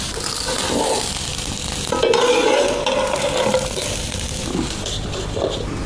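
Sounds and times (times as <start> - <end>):
corn-flour pancake with mountain vegetables sizzling in a flat pan over low heat: 0.0 - 5.6
utensil scraping and stirring in a flat pan: 1.9 - 5.7.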